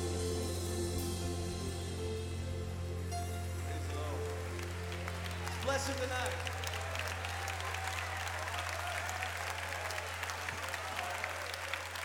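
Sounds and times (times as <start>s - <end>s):
low hum: 0.0s - 5.6s
crowd applauding: 3.6s - 12.0s
speech: 5.8s - 6.5s.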